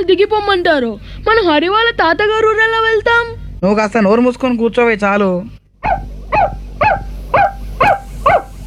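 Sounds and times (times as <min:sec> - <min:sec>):
speech: 0:00.0 - 0:06.0
pet puppy barking excitedly: 0:05.8 - 0:08.6.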